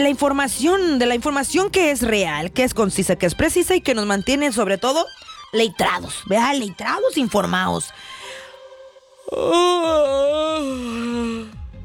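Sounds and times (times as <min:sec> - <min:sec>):
speech: 0:00.0 - 0:08.2, 0:09.3 - 0:11.6
long drawn-out human yawn with a voiced moan: 0:09.2 - 0:11.6.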